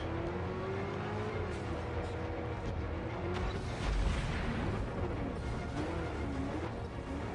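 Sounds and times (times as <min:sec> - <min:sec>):
video game car engine rumbling and revving: 0:00.0 - 0:07.3.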